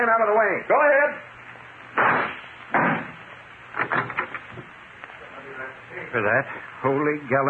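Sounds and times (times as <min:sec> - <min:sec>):
speech: 0:00.0 - 0:01.4, 0:05.6 - 0:07.4
gunshot blasts shooting out the lock of a closet door: 0:02.0 - 0:03.2.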